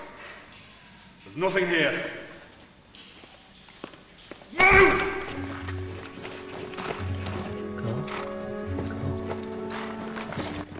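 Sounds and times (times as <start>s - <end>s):
speech: 1.3s - 2.2s
hoofbeats of several horses ridden away from a cave: 2.5s - 10.7s
sustained music: 4.8s - 10.7s.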